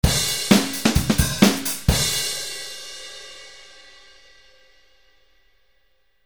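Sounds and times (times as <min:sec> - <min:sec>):
drum solo: 0:00.0 - 0:04.8.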